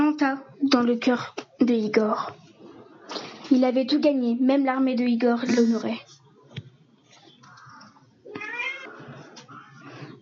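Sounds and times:
speech: 0:00.2 - 0:02.4, 0:03.1 - 0:06.2
cat meowing: 0:07.4 - 0:09.8.

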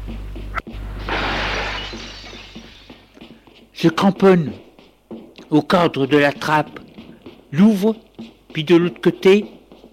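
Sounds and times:
glass window pane being smashed with fists: 0:01.0 - 0:03.0
speech: 0:03.8 - 0:04.6, 0:05.5 - 0:06.8, 0:07.5 - 0:09.6.

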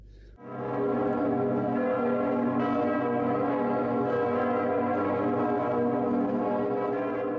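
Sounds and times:
large bell ringing: 0:00.4 - 0:07.3.

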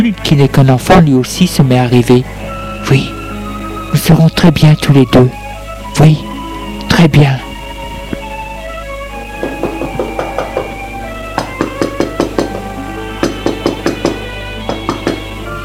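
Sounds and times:
speech: 0:00.0 - 0:03.2, 0:03.9 - 0:05.4, 0:06.0 - 0:06.3, 0:07.0 - 0:07.5
sustained musical drone: 0:00.0 - 0:15.6
knocking on a door: 0:09.4 - 0:15.3.

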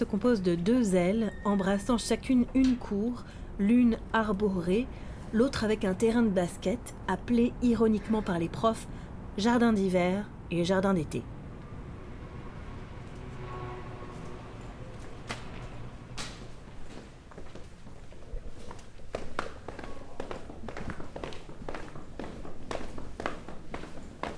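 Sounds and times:
speech: 0:00.0 - 0:11.3
footsteps climbing a spiral staircase: 0:14.9 - 0:24.3.

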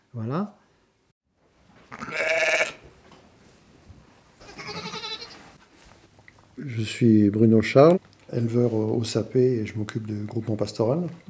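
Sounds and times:
faint noise: 0:00.0 - 0:11.2
speech: 0:00.2 - 0:00.6, 0:06.6 - 0:11.2
ewe bleating: 0:01.9 - 0:02.8, 0:04.4 - 0:05.5.

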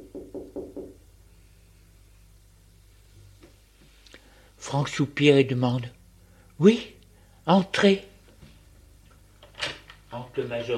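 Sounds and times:
firm knocks on a wooden door: 0:00.0 - 0:01.0
speech: 0:04.6 - 0:06.0, 0:06.6 - 0:08.1, 0:10.4 - 0:10.7.

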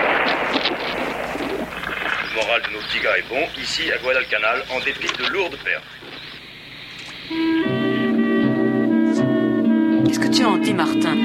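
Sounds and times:
continuous roaring artillery fire on a battlefield: 0:00.0 - 0:04.1
whistling shells on a battlefield: 0:00.0 - 0:08.9
speech: 0:02.4 - 0:06.1, 0:10.2 - 0:11.2.

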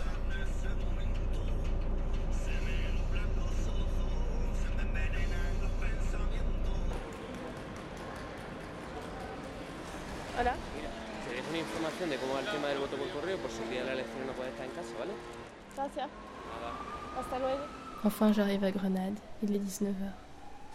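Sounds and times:
moving bus engine rumble on a trip to Granada: 0:00.0 - 0:11.0
speech: 0:10.4 - 0:10.6, 0:11.9 - 0:20.2.

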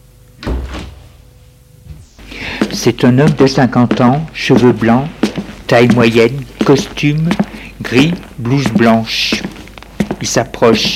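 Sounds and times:
door opening: 0:00.4 - 0:01.1
speech: 0:02.8 - 0:09.5, 0:10.2 - 0:10.9.

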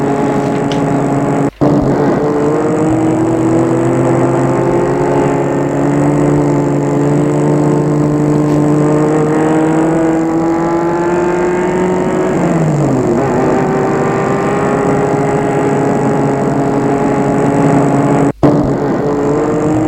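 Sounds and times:
car engine humming while cruising along a road beside the Seine: 0:00.0 - 0:19.8.

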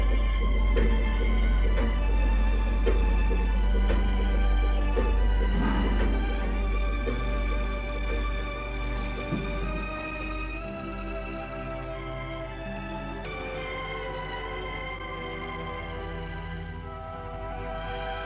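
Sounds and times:
clock ticking: 0:00.0 - 0:11.6
constant low hum: 0:00.0 - 0:18.2
sustained tonal drone: 0:00.0 - 0:18.2.

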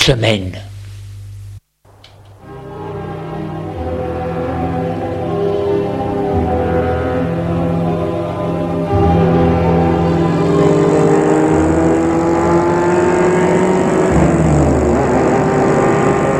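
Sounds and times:
speech: 0:00.0 - 0:00.7
car engine drone while driving: 0:01.2 - 0:16.3
road rumble of a driving car: 0:04.0 - 0:16.3.

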